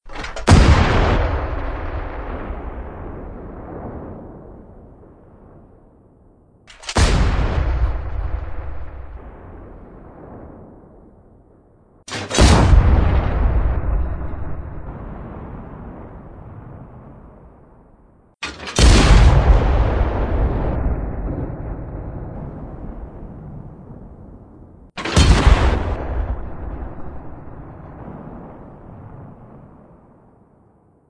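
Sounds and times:
cannon firing: 0:00.0 - 0:04.6, 0:06.7 - 0:11.0, 0:12.1 - 0:16.2, 0:18.4 - 0:23.0, 0:24.9 - 0:29.4.

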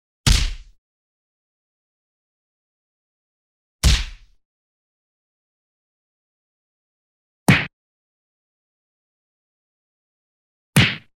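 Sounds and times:
boxing punch: 0:00.3 - 0:00.8, 0:03.8 - 0:04.4, 0:07.5 - 0:07.7, 0:10.8 - 0:11.1.

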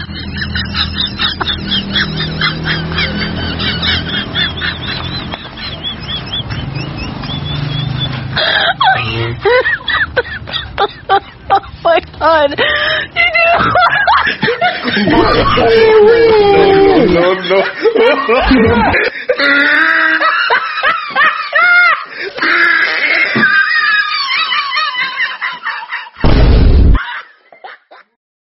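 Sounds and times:
person laughing until hoarse: 0:00.0 - 0:11.9, 0:12.6 - 0:26.3.

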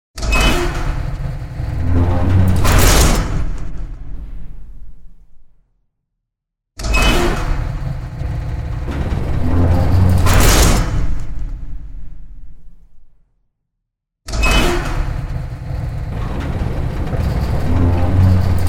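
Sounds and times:
metal gate opening and closing: 0:00.2 - 0:04.8, 0:06.8 - 0:12.5, 0:14.3 - 0:18.6.

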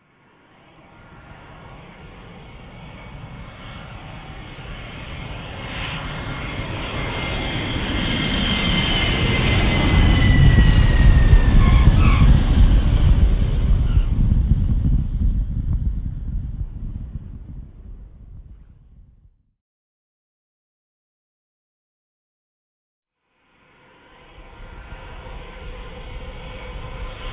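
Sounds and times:
airplane taking off: 0:00.0 - 0:19.3, 0:23.5 - 0:27.3.

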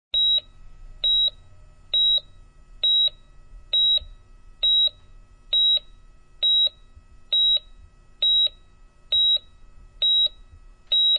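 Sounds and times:
heart rate monitor beeping: 0:00.2 - 0:11.1.

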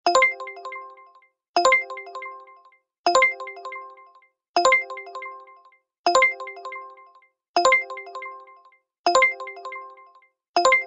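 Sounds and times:
ride-hailing driver app ringtone for accepting an order: 0:00.1 - 0:10.8.

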